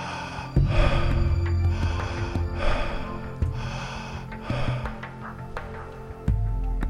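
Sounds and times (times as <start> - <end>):
fast continuous airy breathing close to the microphone: 0.0 - 6.2.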